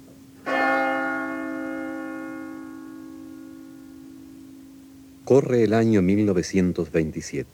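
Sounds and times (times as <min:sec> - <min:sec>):
large church bell struck: 0:00.4 - 0:04.6
speech: 0:05.3 - 0:07.5.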